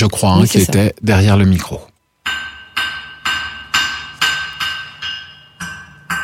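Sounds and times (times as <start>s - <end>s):
speech: 0.0s - 1.9s
blacksmith's hammer striking an anvil forging iron and steel: 2.2s - 6.2s.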